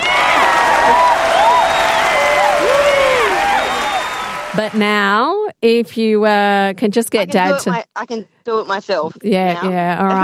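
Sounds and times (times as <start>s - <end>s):
crowd whistles: 0.0s - 4.6s
crowd applause: 0.0s - 5.3s
speech: 4.6s - 10.2s.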